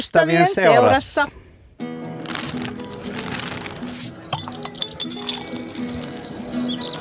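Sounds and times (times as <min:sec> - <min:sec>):
speech: 0:00.0 - 0:01.4
glasses clinking in a Midsummer toast: 0:03.7 - 0:06.2.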